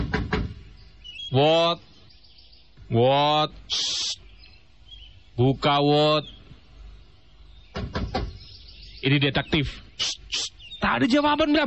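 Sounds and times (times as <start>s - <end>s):
knocking on a door: 0.0s - 0.6s, 7.7s - 8.4s
speech: 1.3s - 1.9s, 2.9s - 4.2s, 5.4s - 6.4s, 9.0s - 11.6s.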